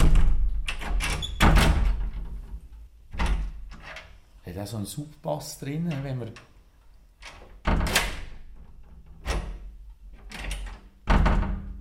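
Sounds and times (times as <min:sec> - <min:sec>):
heavy old door of a former milk shop closing with a deep thud: 0:00.0 - 0:02.5, 0:07.3 - 0:09.7, 0:10.3 - 0:11.7
speech: 0:04.6 - 0:06.5.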